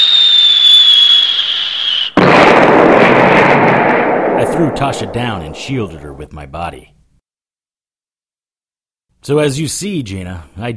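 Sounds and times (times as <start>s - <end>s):
high steady missile whistle: 0.0s - 2.2s
copper core fragment missiles exploding against a tower turret: 2.2s - 6.1s
speech: 4.8s - 7.0s, 9.2s - 10.7s.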